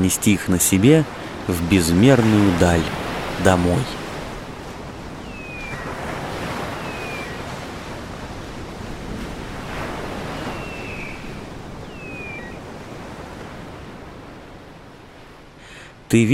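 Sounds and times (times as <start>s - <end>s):
speech: 0.0s - 4.0s, 16.1s - 16.3s
ocean surf washing in rolling surges: 0.0s - 16.3s
windy hiss: 0.8s - 16.0s
faint high sliding whistle-like calls: 5.2s - 7.6s, 10.3s - 12.6s.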